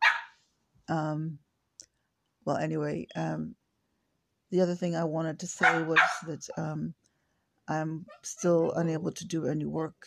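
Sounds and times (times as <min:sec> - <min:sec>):
male dog barking with a whining edge: 0:00.0 - 0:00.4, 0:05.6 - 0:06.3
speech: 0:00.9 - 0:01.4, 0:02.4 - 0:03.6, 0:04.5 - 0:07.0, 0:07.7 - 0:10.0.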